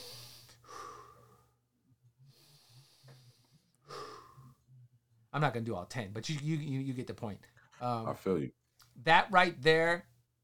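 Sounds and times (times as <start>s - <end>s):
deep slow breaths in and out: 0.0s - 4.7s
speech: 5.4s - 10.1s.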